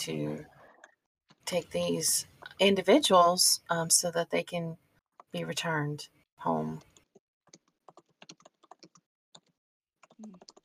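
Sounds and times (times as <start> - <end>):
speech: 0.0 - 0.6, 1.5 - 6.9
typing on a computer keyboard: 6.8 - 10.6.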